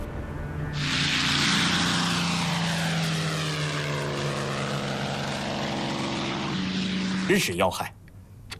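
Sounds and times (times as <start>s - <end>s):
special propeller plane from Nanjing arriving in Xi'an: 0.0s - 8.5s.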